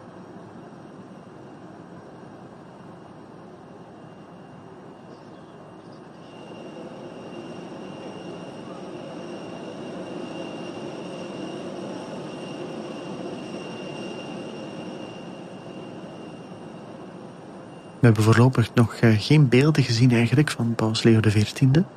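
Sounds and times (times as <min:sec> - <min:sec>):
airplane jet engines idling at an airport: 0:00.0 - 0:21.9
speech: 0:18.0 - 0:21.9.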